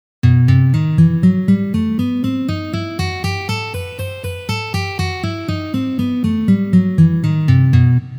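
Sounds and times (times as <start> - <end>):
E harmonic minor scale played in position: 0.3 - 8.1.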